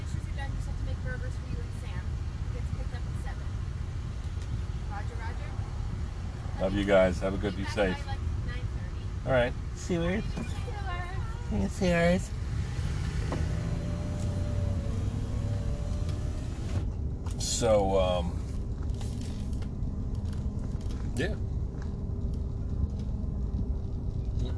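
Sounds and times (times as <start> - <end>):
heavy truck engine rumble approaching fast from behind: 0.0 - 24.5
road roar: 0.0 - 24.5
speech: 6.6 - 8.1, 9.2 - 10.5, 11.5 - 12.4, 17.6 - 18.4, 21.2 - 21.4
rising whine: 11.9 - 24.5.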